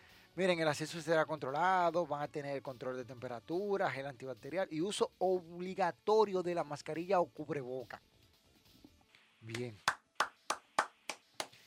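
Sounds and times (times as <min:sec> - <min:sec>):
speech: 0:00.4 - 0:08.1, 0:09.4 - 0:09.9
hands clapping: 0:09.5 - 0:11.6.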